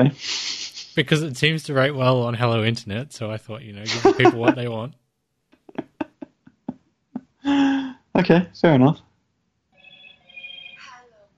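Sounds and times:
speech: 0.0s - 0.4s, 1.0s - 5.0s, 7.4s - 9.1s
laughter: 0.0s - 4.9s, 5.7s - 6.7s
mobile phone startup jingle: 9.8s - 10.9s.

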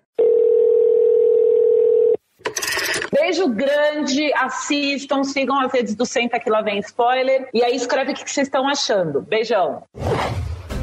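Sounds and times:
telephone ringing with an electronic tone: 0.0s - 3.2s
speech: 3.3s - 10.4s.

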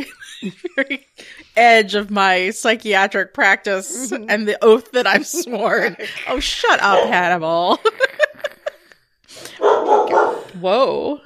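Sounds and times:
laughter: 0.0s - 1.2s, 3.9s - 9.0s
speech: 0.0s - 8.2s, 10.6s - 11.2s
dog barking: 6.8s - 7.2s, 9.6s - 10.5s.

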